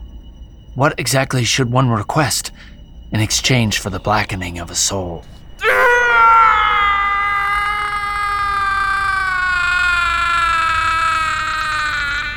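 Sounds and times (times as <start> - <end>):
speech: 0.8 - 5.4
man's long agonized scream: 5.6 - 12.3.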